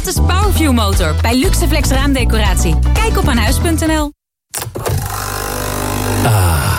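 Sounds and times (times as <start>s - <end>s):
speech: 0.2s - 4.2s, 6.2s - 6.7s
capsule coffee machine brewing a capsule: 5.0s - 6.3s.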